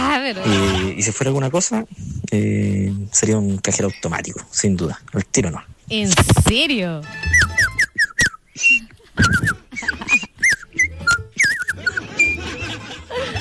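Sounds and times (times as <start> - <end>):
speech: 0.3 - 7.6, 8.6 - 10.2
dog whining and yipping: 7.2 - 13.0
laughter: 11.7 - 13.4.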